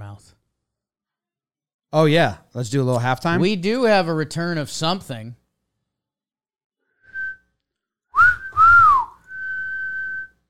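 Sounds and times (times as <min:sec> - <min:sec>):
speech: 0:01.9 - 0:05.4
person whistling to call dogs: 0:07.0 - 0:07.4, 0:08.1 - 0:10.4.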